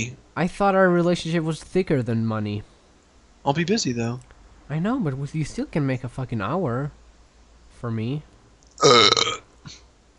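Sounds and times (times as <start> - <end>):
speech: 0.0 - 2.7, 3.4 - 7.0, 7.8 - 9.8
loud rattling burp: 8.8 - 9.5.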